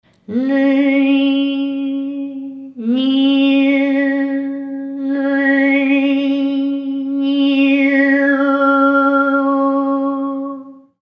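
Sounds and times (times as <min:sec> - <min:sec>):
girl singing strangely: 0:00.2 - 0:11.0.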